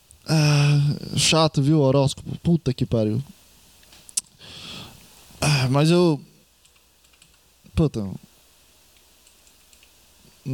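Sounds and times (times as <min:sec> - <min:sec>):
speech: 0:00.3 - 0:03.4, 0:05.6 - 0:06.3, 0:07.8 - 0:08.3
computer keyboard typing: 0:06.6 - 0:07.4, 0:09.2 - 0:09.9.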